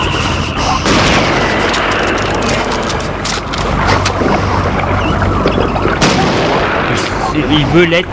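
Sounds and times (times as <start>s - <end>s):
explosions of grenades and bazookas booming: 0.0s - 4.7s, 5.3s - 7.8s
cannon blasts in an attack on a boat: 0.7s - 4.3s, 5.9s - 7.8s
rattling gunfire: 0.9s - 3.8s.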